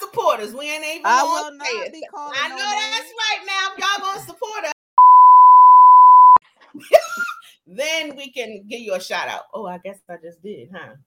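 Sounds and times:
speech: 0.2 - 4.7, 7.7 - 11.0
censor beep over a spoken name: 5.0 - 6.4.

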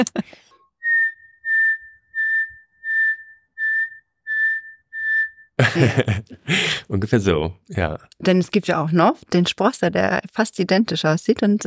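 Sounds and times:
speech: 0.0 - 0.5, 5.6 - 11.6
person whistling imitation of nightingale song phrase: 0.6 - 5.6
laughter: 5.6 - 6.8.

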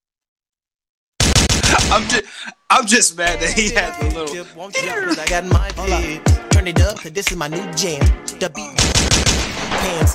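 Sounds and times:
gunshot sound effects: 1.2 - 2.2, 8.8 - 10.1
speech: 1.9 - 10.1.

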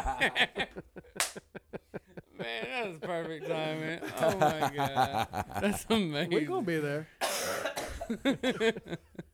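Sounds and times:
laughter: 0.0 - 7.0, 8.0 - 9.3
speech: 0.2 - 1.4, 2.4 - 9.1
loud coughing fit: 7.2 - 8.2.

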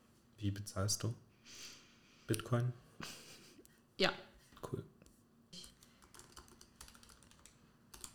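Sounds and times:
speech: 0.4 - 3.2, 4.0 - 4.9
computer keyboard keys clicking while ordering food online: 5.6 - 8.1.

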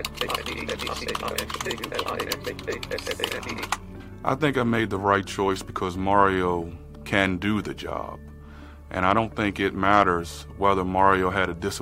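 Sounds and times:
fingers typing on a computer keyboard: 0.0 - 3.8
speech: 0.0 - 8.3, 8.9 - 11.8.

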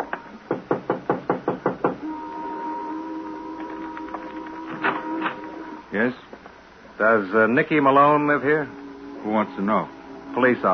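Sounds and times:
firm knocking on the door of a rundown white single-frame house: 0.5 - 2.0
low sustained hum: 2.0 - 6.2, 7.0 - 10.7
speech: 5.9 - 6.4, 7.0 - 10.7.

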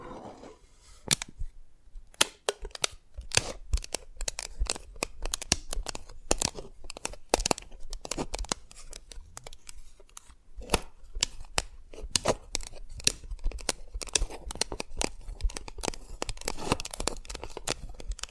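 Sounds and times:
tapping and cracking brittle dalgona candy: 2.1 - 18.2.

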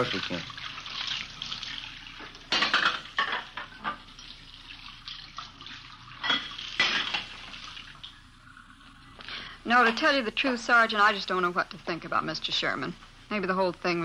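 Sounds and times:
speech: 0.0 - 0.6, 9.7 - 14.0
dishes being rinsed and splashing in a sink: 0.0 - 8.2
running tap water in a sink: 0.0 - 14.0.

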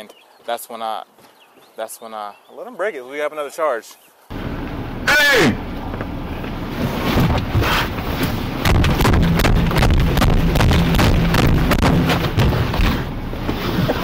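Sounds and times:
speech: 0.0 - 4.1
constant heavy rumble: 4.3 - 14.0
something banging against a car window: 6.8 - 14.0.

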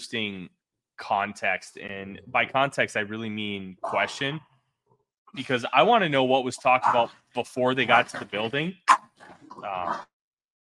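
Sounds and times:
speech: 0.1 - 4.5, 5.3 - 10.1
pet dogs fighting and scuffling: 7.9 - 10.1.

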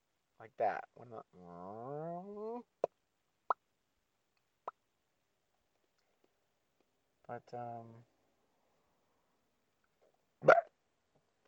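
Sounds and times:
speech: 0.4 - 2.9, 7.3 - 8.1
lip mouth pops imitating a cartoon pop effect: 10.4 - 10.7.

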